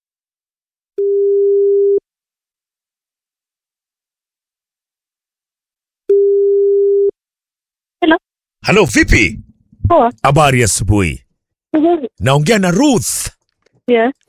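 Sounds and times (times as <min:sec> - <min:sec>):
telephone ringing tone while calling someone: 0:01.0 - 0:02.0, 0:06.1 - 0:07.1
speech: 0:08.0 - 0:14.2.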